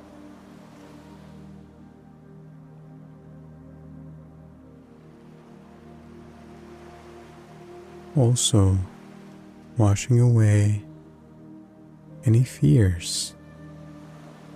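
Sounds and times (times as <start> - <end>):
small ocean waves washing gently onto a shore: 0.0 - 2.1, 4.8 - 11.4, 13.2 - 14.5
speech: 8.2 - 8.9, 9.8 - 10.9, 12.2 - 13.4.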